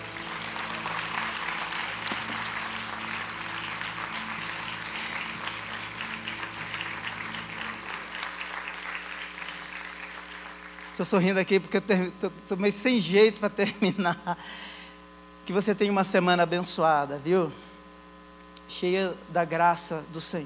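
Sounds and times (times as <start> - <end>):
audience applauding: 0.0 - 11.2
speech: 11.0 - 14.7, 15.5 - 17.7, 18.7 - 20.4.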